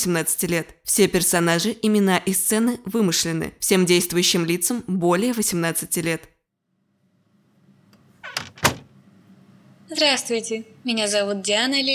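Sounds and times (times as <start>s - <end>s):
speech: 0.0s - 6.4s, 9.9s - 11.9s
door creaking on its hinges as a visitor enters: 8.0s - 8.9s
sharp knock of a door latch or frame: 8.2s - 8.9s.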